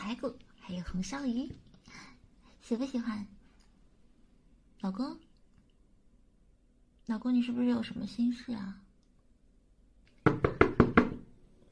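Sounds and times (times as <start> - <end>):
speech: 0.1 - 2.1, 2.7 - 3.4, 4.8 - 5.3, 7.1 - 8.8
loud forceful knocking on a door: 10.2 - 11.3.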